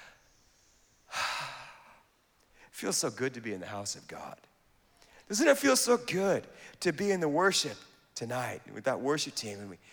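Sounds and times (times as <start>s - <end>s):
deep breath during a church sermon: 0.0s - 2.7s
faint hiss: 0.0s - 9.9s
speech: 2.8s - 4.5s, 5.3s - 9.9s.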